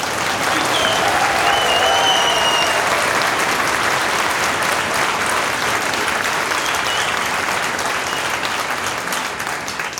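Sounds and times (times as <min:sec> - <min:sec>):
audience applauding in a university hall: 0:00.0 - 0:09.9.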